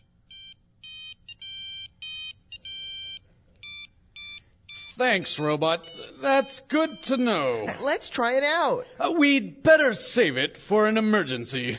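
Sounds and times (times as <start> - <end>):
shrill electronic phone alert ringtone: 0.0 - 7.9
speech: 5.0 - 11.7.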